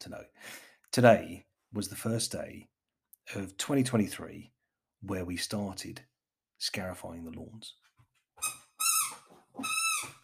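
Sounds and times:
speech: 0.0s - 2.7s, 3.3s - 7.8s
squeaky ball toy squeaking: 8.4s - 10.2s.

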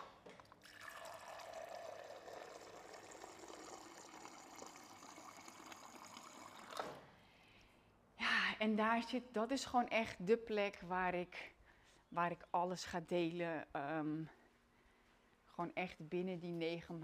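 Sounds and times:
water pouring into a glass: 0.6s - 7.0s
speech: 8.6s - 14.4s, 15.6s - 17.0s.

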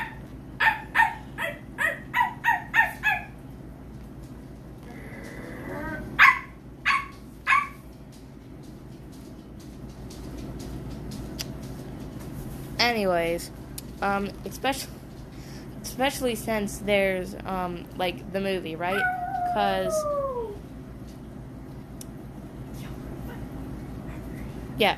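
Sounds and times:
dog barking: 0.0s - 3.4s, 6.2s - 7.8s
speech: 12.9s - 15.0s, 16.0s - 20.2s, 24.8s - 24.9s.

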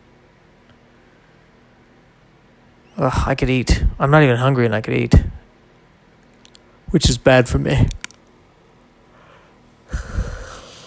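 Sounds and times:
speech: 3.0s - 5.3s, 6.9s - 8.0s
tired person yawning: 9.9s - 10.8s.

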